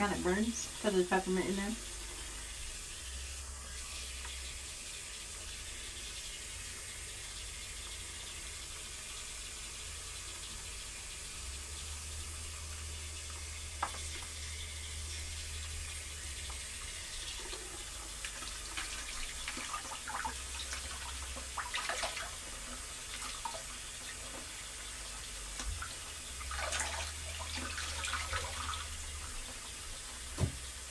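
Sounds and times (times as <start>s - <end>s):
speech: 0.0s - 2.0s
running tap water splashing as hair is rinsed in a bathtub: 0.0s - 30.9s
water drips and spatters in a bathtub: 16.4s - 29.4s.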